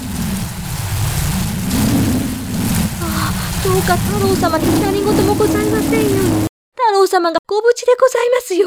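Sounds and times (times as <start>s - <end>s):
deep rolling rumble of thunder: 0.0s - 6.5s
dense heavy storm rain hissing: 0.0s - 6.5s
speech: 3.6s - 8.6s.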